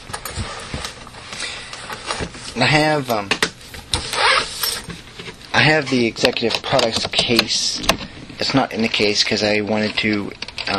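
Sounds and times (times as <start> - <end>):
light shuffling noises: 0.0 - 3.9
squeaky chair creaking: 0.0 - 8.1
speech: 2.6 - 3.4, 5.6 - 10.7.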